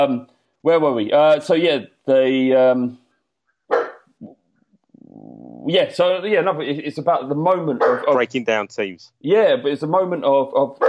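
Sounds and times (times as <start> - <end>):
speech: 0.0 - 3.0, 5.6 - 10.8
dog barking at home: 3.7 - 4.1, 7.7 - 8.2.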